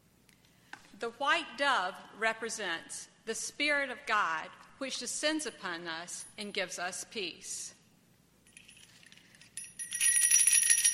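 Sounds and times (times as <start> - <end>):
speech: 1.0 - 7.8
jingle bells shaking: 8.5 - 10.9.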